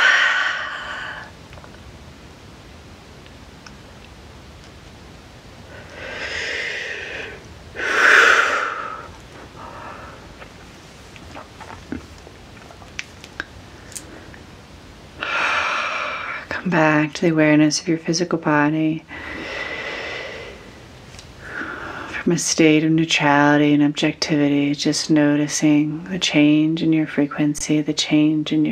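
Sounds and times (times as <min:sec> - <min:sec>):
slow deep breaths during a guided meditation: 0:00.0 - 0:01.4, 0:05.6 - 0:10.5, 0:15.2 - 0:16.5, 0:19.1 - 0:22.2
speech: 0:16.7 - 0:19.4, 0:22.3 - 0:28.7.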